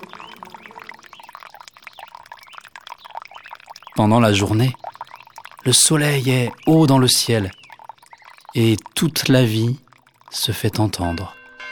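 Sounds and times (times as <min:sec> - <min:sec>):
thin chirping calls: 0:00.0 - 0:05.9, 0:06.5 - 0:08.6
running water flowing: 0:00.0 - 0:11.7
speech: 0:04.0 - 0:04.8, 0:05.6 - 0:07.6, 0:08.5 - 0:11.4.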